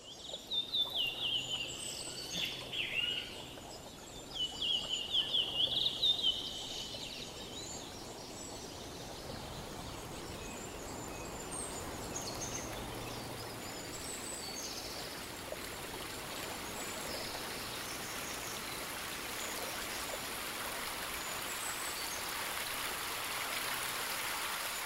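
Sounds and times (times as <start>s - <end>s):
great kiskadees singing: 0.0s - 22.8s
small stream trickling into a pond: 0.0s - 24.8s.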